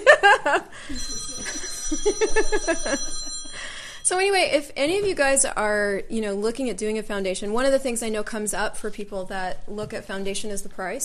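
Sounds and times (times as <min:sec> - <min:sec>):
laughter: 0:00.0 - 0:03.4
telephone ringing with trilling electronic pulses: 0:00.9 - 0:04.2
speech: 0:02.1 - 0:03.2, 0:04.1 - 0:11.0.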